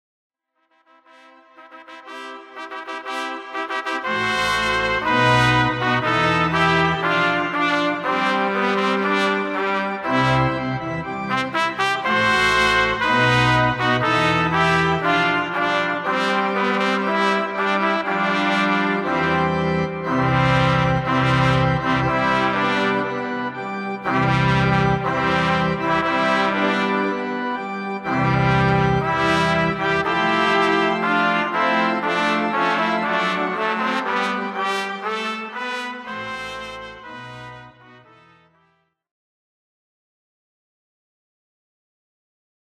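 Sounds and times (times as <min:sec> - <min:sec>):
organ music: 0:01.2 - 0:38.6.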